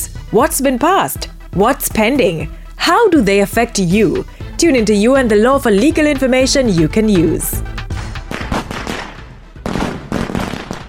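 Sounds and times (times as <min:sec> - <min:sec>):
speech: 0:00.3 - 0:07.7
string of firecrackers crackling and popping: 0:08.2 - 0:10.8.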